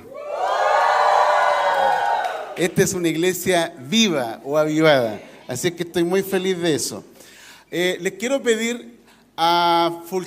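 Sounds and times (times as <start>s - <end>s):
audience shouting and cheering with joy: 0.0s - 2.7s
speech: 2.6s - 7.1s, 7.7s - 10.2s.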